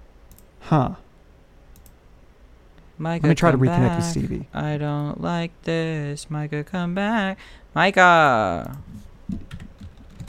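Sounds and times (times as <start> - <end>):
speech: 0.7 - 1.0, 3.0 - 9.5
typing on a computer keyboard: 9.3 - 10.2.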